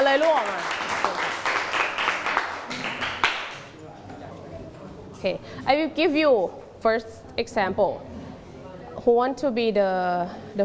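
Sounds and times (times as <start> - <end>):
group clapping to welcome a friend: 0.0 - 3.7
speech: 5.2 - 8.1, 9.0 - 10.6.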